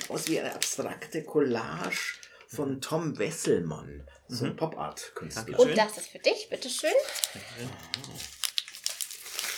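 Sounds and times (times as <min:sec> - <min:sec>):
gift wrapping paper crinkling and rustling as a large heavy gift is unwrapped: 0:00.0 - 0:01.1, 0:05.9 - 0:09.5
speech: 0:00.1 - 0:08.4
voice murmuring: 0:07.4 - 0:08.3.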